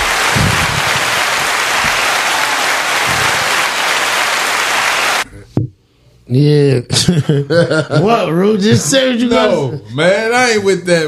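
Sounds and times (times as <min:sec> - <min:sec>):
audience applause and cheering: 0:00.0 - 0:05.2
speech: 0:06.3 - 0:11.0
laughter: 0:06.9 - 0:08.2.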